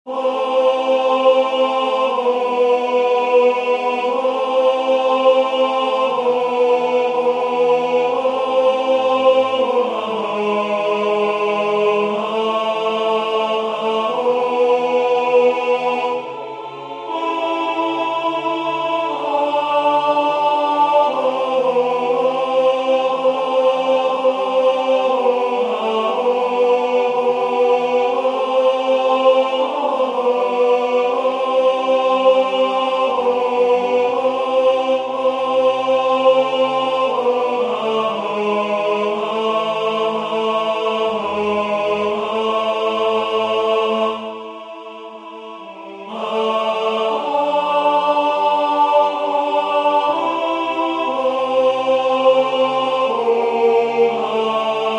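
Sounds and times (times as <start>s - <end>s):
tenor singing sacred music: 0.0s - 54.9s.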